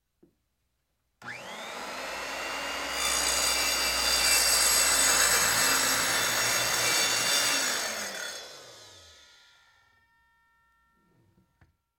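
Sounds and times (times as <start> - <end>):
electric circular saw running: 1.2 - 10.1.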